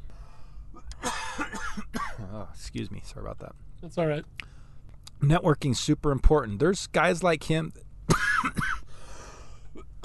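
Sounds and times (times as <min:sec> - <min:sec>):
person coughing hard with something stuck in the throat: 0:01.0 - 0:02.3, 0:08.1 - 0:08.9, 0:09.7 - 0:10.0
speech: 0:02.5 - 0:04.5, 0:05.2 - 0:08.7.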